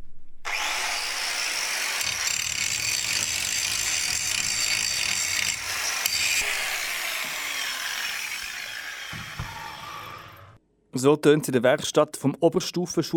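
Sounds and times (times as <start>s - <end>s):
grinding machine running in school workshop: 0.5s - 10.6s
speech: 11.0s - 13.1s.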